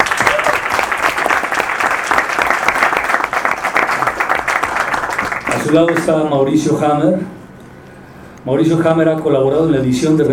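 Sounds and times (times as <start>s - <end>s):
audience applause greeting an introduced guest: 0.0s - 6.1s
speech: 5.7s - 7.4s, 8.4s - 10.3s.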